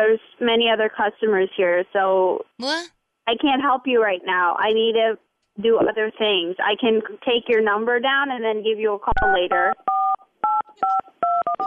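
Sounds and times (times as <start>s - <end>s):
speech: 0.0s - 9.9s
telephone keypad tones: 9.5s - 11.6s.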